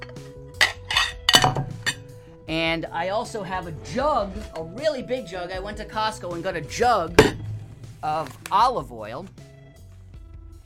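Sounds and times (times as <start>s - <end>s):
dishes of food clinking as set down in a kitchen: 0.0s - 2.2s
speech: 2.5s - 7.4s, 8.0s - 9.4s.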